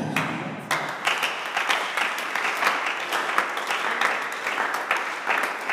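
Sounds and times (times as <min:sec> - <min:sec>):
audience clapping: 0:00.1 - 0:05.7.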